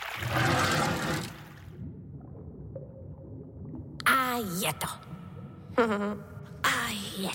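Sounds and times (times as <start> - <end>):
water gushing through a pond sluice from the bottom of a dam: 0.0 - 1.7
low steady gurgling rumble of water: 0.2 - 6.9
speech: 4.4 - 5.0, 5.8 - 6.3, 6.9 - 7.3.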